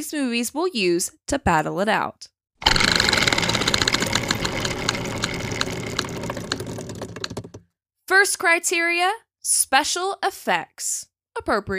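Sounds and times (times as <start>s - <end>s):
speech: 0.0s - 2.3s, 8.1s - 11.7s
spinning prize wheel clicking: 2.6s - 7.6s.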